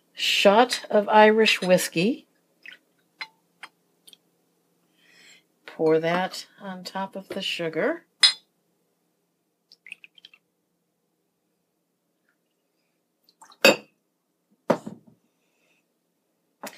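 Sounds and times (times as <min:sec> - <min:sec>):
speech: 0:00.2 - 0:02.3, 0:05.8 - 0:08.1
spoon clinking on an Irish coffee glass: 0:08.2 - 0:08.4.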